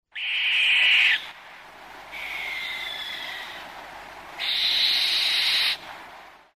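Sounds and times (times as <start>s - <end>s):
barn owl screeching: 0.1s - 1.3s, 2.1s - 3.6s, 4.4s - 5.8s.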